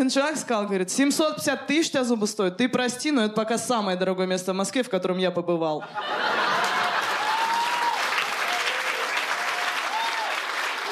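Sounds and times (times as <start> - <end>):
speech: 0.0 - 6.5
laughter: 5.8 - 7.9
audience applause: 6.4 - 10.9.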